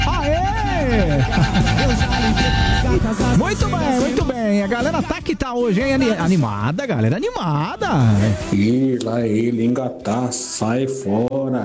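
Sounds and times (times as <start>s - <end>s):
laughter: 0.0s - 5.2s, 7.8s - 8.7s
people talking and calling out: 0.0s - 11.6s
truck horn blaring: 1.0s - 4.4s
speech: 3.5s - 11.6s.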